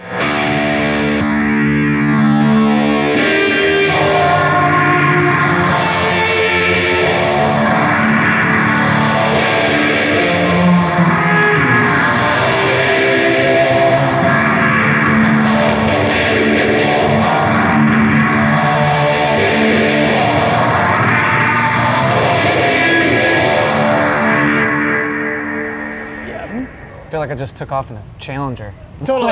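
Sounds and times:
electric guitar through modulated delay and reverb pedal: 0:00.0 - 0:29.3
speech: 0:27.3 - 0:29.3.

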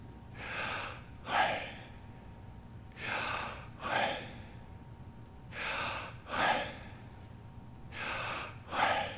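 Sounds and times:
person breathing slowly and quietly: 0:00.3 - 0:02.3, 0:02.9 - 0:04.7, 0:05.5 - 0:07.3, 0:07.9 - 0:09.1.

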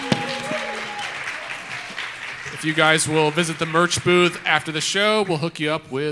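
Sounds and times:
faint tonal whoops or whistles: 0:00.0 - 0:01.7
dense audience applause: 0:00.0 - 0:05.5
speech: 0:02.6 - 0:06.1.

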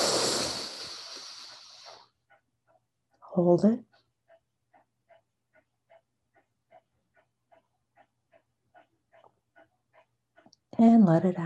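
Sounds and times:
quick breath in during a guided breathing exercise: 0:00.0 - 0:02.1
speech: 0:03.4 - 0:03.9, 0:10.8 - 0:11.4.

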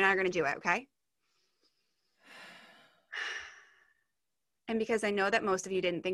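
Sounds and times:
speech: 0:00.0 - 0:00.9, 0:04.7 - 0:06.1
deep breath taken slowly: 0:01.2 - 0:04.1.

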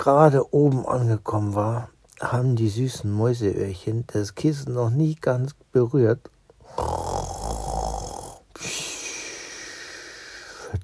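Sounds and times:
speech: 0:00.0 - 0:07.0
mouse snoring on a pillow: 0:06.6 - 0:10.6.

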